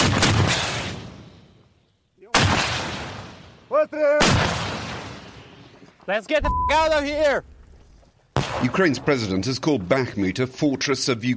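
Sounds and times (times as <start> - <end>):
gunfire as soldiers shoot back after mortar shelling in Ukraine: 0.0 - 1.1, 2.3 - 3.4, 4.2 - 5.2, 8.4 - 8.9
speech: 3.8 - 4.5, 6.1 - 7.5, 8.6 - 11.3.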